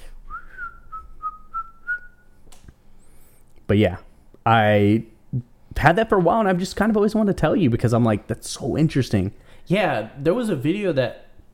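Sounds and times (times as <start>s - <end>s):
person whistling a sustained note: 0.3s - 2.3s
speech: 3.7s - 11.2s.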